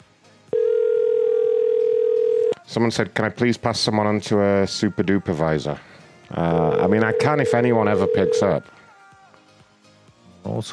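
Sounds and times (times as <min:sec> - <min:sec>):
telephone line tone during a phone call: 0:00.6 - 0:02.5, 0:06.6 - 0:08.6
speech: 0:02.8 - 0:08.8, 0:10.5 - 0:10.7.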